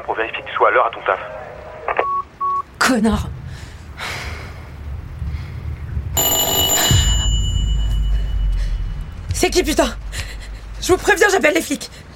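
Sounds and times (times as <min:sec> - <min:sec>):
speech: 0:00.0 - 0:01.5, 0:02.9 - 0:03.6, 0:09.4 - 0:10.0, 0:10.8 - 0:12.0
low rumbling hum: 0:02.3 - 0:12.1
intercom buzzer ringing: 0:06.2 - 0:08.3.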